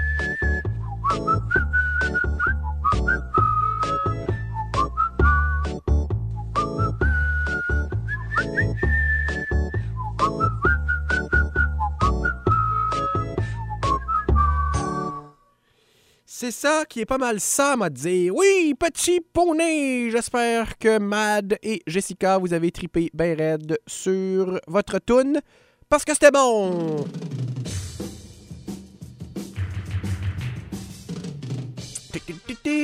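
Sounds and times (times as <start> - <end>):
rhythmic backing track with a pulsing beat: 0.0 - 15.1, 26.7 - 32.8
whistled melody: 0.0 - 15.6
speech: 16.5 - 27.4.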